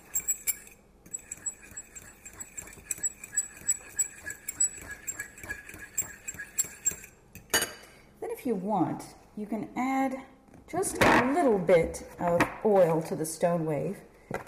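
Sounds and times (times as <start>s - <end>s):
fork whisking egg, egg substitute and water in a cup for an omelet: 0.0s - 7.6s
speech: 8.5s - 14.1s.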